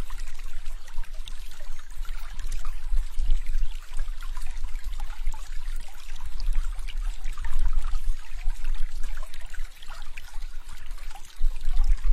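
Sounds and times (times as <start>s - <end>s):
trickling water: 0.0s - 12.1s.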